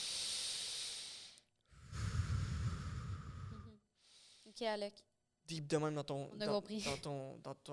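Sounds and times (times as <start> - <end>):
deep breathing in and out: 0.0 - 4.6
speech: 4.6 - 7.7.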